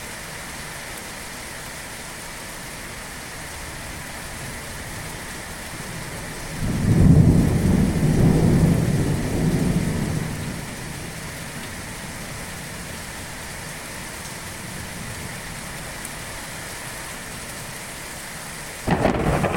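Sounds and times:
steady dense rain hissing in a thunderstorm: 0.0s - 19.5s
deep thunder rumbling in a thunderstorm: 5.9s - 11.2s, 18.8s - 19.5s.

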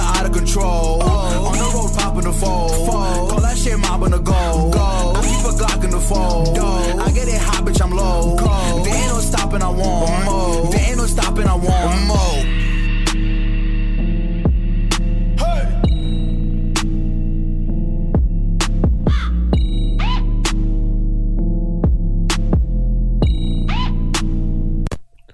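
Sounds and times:
loud rap beat with booming bass and sharp percussion hits: 0.0s - 24.9s.

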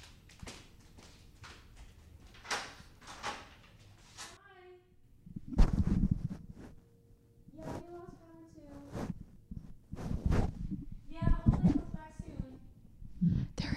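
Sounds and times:
door creaking open a crack: 2.2s - 4.4s
heavier low thump and rumble of door: 9.1s - 13.6s.

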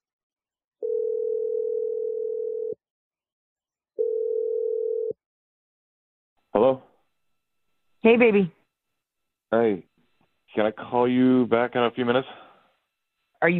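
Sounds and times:
long steady telephone ringing tones: 0.8s - 2.8s, 4.0s - 5.2s
speech: 8.0s - 8.6s, 9.5s - 9.9s, 10.5s - 12.4s, 13.4s - 13.5s.

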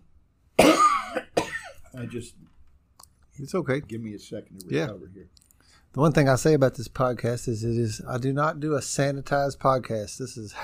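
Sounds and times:
person coughing: 0.6s - 1.9s
speech: 2.0s - 2.6s, 3.4s - 10.6s.

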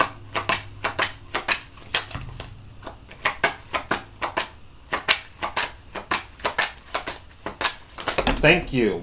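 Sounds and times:
playing cards snapping while handled from a deck during a card trick: 0.0s - 8.3s.

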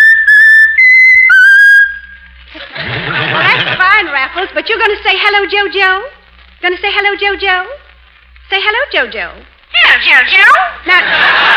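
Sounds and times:
bird whistling a tune: 0.0s - 2.3s
laughter: 2.6s - 4.5s, 10.9s - 11.5s
speech: 4.6s - 7.8s, 8.5s - 11.5s.

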